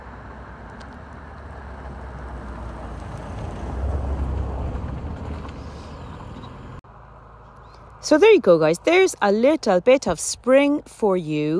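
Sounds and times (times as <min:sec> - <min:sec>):
car passing by on a nearby road: 0:00.0 - 0:08.0
speech: 0:08.0 - 0:11.5.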